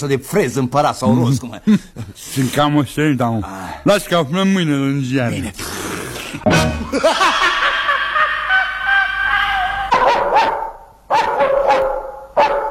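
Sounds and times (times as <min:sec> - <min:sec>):
speech: 0:00.0 - 0:07.7
laughter: 0:06.5 - 0:09.9
dog barking and whining: 0:09.9 - 0:12.7.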